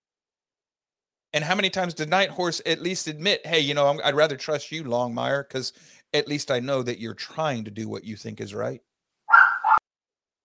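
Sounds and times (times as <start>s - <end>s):
speech: 1.4s - 8.9s
dog barking: 9.3s - 9.8s.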